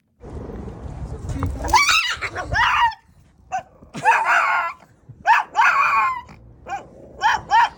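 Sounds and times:
dog yelping and screaming in anger and terror: 0:01.7 - 0:07.7.

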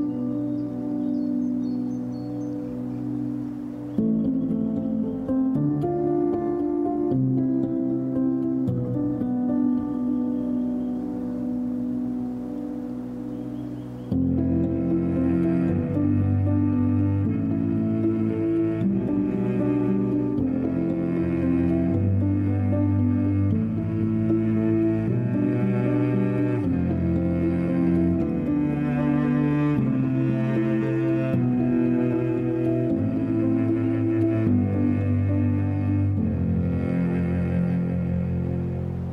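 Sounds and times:
strings playing slow sustained low warm chords: 0:00.0 - 0:39.1.

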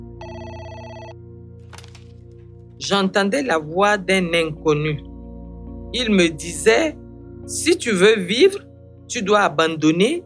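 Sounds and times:
telephone ringing with electronic bell tone: 0:00.2 - 0:02.1
speech: 0:02.8 - 0:05.1, 0:05.9 - 0:10.2.

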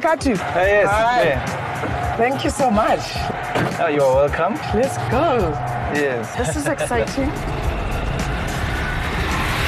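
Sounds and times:
speech: 0:00.0 - 0:07.6
road noise: 0:00.0 - 0:09.6
small quadricycle with motorbike engine driving: 0:06.9 - 0:09.6.

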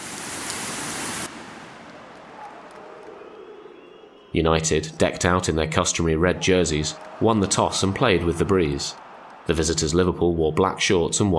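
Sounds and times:
heavy showery rain at a football match: 0:00.0 - 0:02.2
speech: 0:04.3 - 0:11.3.

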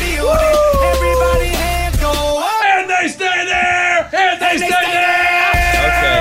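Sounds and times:
people yelling and whooping: 0:00.1 - 0:01.8, 0:02.4 - 0:06.2.

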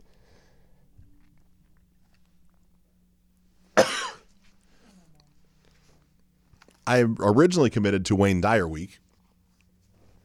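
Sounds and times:
faint low hum: 0:00.0 - 0:10.2
person coughing: 0:03.8 - 0:04.3
speech: 0:06.9 - 0:09.0.

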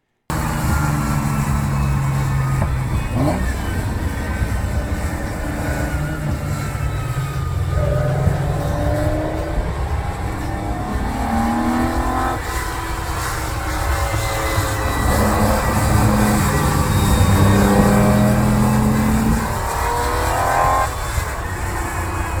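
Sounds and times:
Ferrari GTO sports car engine accelerating through gear changes: 0:00.3 - 0:22.3.

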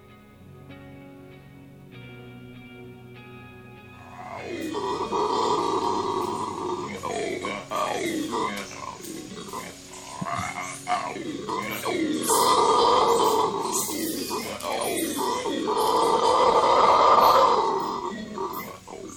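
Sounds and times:
red howler monkeys giving deep gurgling roaring calls: 0:04.0 - 0:19.1
red howler monkeys guttural grunting: 0:04.0 - 0:19.1.

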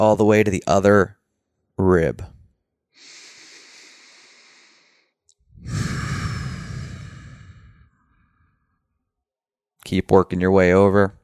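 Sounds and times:
speech: 0:00.0 - 0:01.2, 0:01.8 - 0:02.4, 0:05.6 - 0:05.9, 0:09.9 - 0:11.2
slow deep exhaled breaths during a self-massage along the ribs: 0:03.0 - 0:08.9.

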